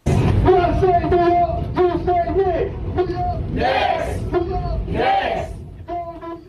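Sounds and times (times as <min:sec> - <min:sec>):
constant low subway car rumble: 0:00.0 - 0:06.4
basketball fans cheering and chanting in a packed subway car: 0:03.0 - 0:05.6.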